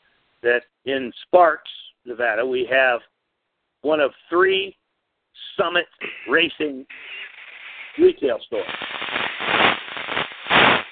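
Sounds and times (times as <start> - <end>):
speech: 0.4 - 3.1, 3.8 - 4.8, 5.4 - 7.2, 8.0 - 9.0
harsh crackling static on a phone line: 6.0 - 10.9.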